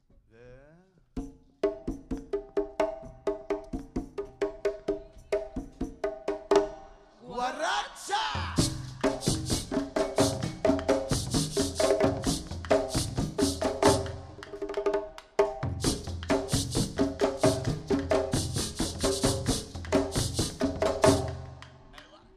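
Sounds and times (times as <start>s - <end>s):
Arabic drum song: 1.2s - 22.3s.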